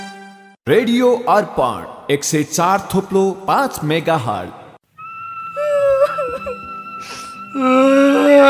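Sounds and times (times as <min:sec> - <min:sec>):
speech: 0:00.7 - 0:04.6, 0:07.5 - 0:08.4
boy crying: 0:05.6 - 0:08.4.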